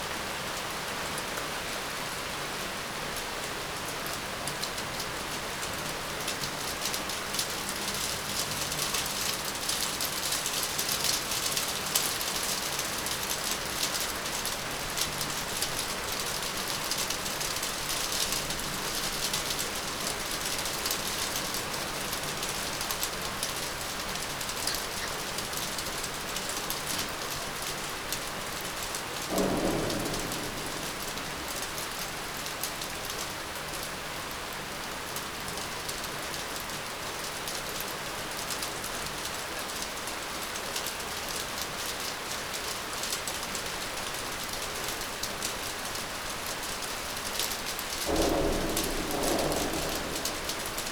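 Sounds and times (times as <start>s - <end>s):
rain on a balcony: 0.0s - 50.9s
thunder booming: 29.1s - 32.6s, 47.6s - 50.9s.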